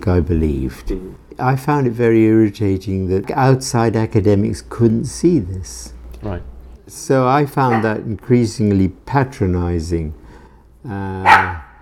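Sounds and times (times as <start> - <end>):
speech: 0.0 - 10.2, 10.8 - 11.6
dog barking with a whiny tone: 7.7 - 8.0, 11.2 - 11.7.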